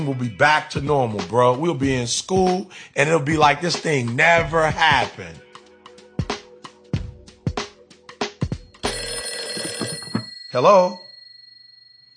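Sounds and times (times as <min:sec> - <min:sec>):
speech: 0:00.0 - 0:05.4, 0:10.6 - 0:11.0
telephone bell ringing: 0:08.7 - 0:12.1.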